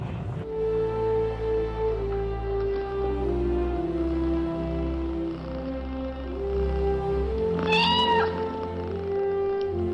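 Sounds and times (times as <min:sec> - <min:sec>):
steady droning low background: 0:00.0 - 0:09.9
female cat astronaut meowing: 0:07.4 - 0:09.0.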